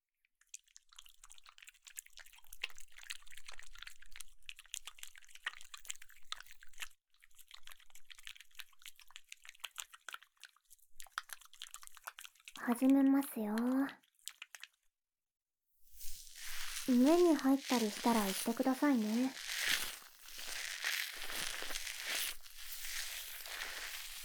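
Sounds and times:
speech: 12.7 - 14.0, 16.9 - 19.4
shampoo foam being worked through hair: 15.9 - 24.2.

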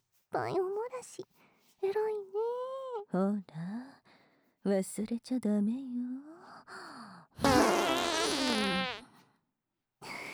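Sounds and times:
speech: 0.3 - 4.0, 4.6 - 7.6
loud buzzy wavering fart: 7.4 - 9.0.

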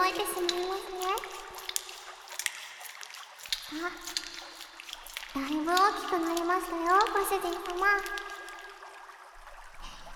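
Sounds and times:
hot water poured to rinse off foam: 0.0 - 10.1
speech: 3.8 - 4.3, 5.4 - 8.2.

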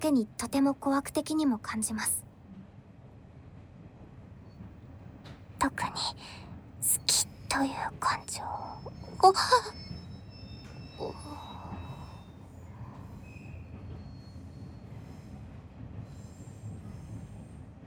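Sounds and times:
speech: 0.0 - 2.2, 5.6 - 9.9, 11.0 - 11.5
steady low rumble of a rail car slowing down: 0.0 - 17.8
train wheels squealing as train decelerates: 7.1 - 17.8.

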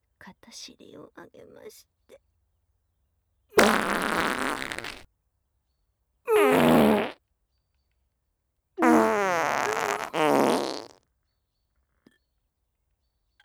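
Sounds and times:
speech: 0.5 - 2.3
loud buzzy sputtering farts: 3.6 - 5.0, 6.3 - 7.2, 8.8 - 11.0.

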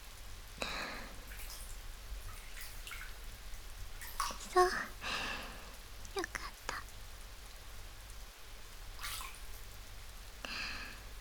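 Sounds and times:
soft steady rain: 0.0 - 11.1
brief brighter splashes or drips: 1.3 - 3.3, 9.0 - 9.6
speech: 4.6 - 4.9.

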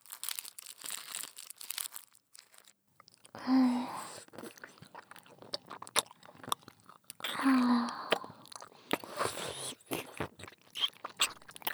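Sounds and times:
stick lollipop being sucked with soft wet sucking and smacking: 3.4 - 11.7
louder crunching bites of a stick lollipop: 4.1 - 11.7.

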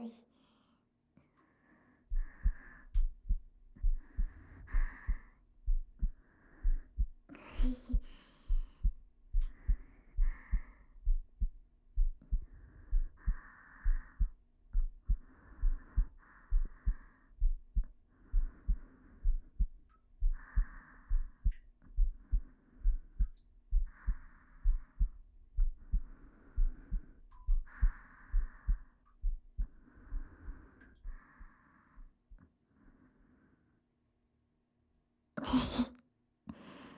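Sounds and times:
steady heartbeat thumping: 2.1 - 31.5.

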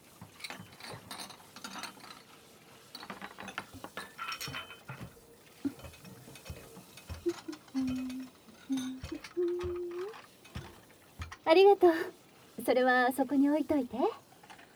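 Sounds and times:
plates clattering and clinking as they are carried and set down: 3.1 - 11.4
ringing scrapes of ceramic: 3.3 - 12.0
speech: 11.5 - 14.2.

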